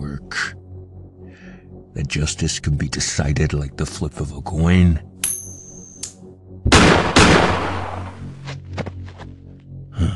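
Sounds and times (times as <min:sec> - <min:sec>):
speech: 0:02.0 - 0:05.1
gunshots: 0:06.7 - 0:08.2.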